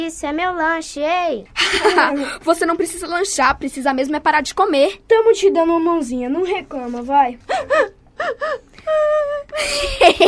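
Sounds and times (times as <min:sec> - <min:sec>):
speech: 0:00.0 - 0:10.2
girl sobbing and wailing: 0:07.5 - 0:10.2.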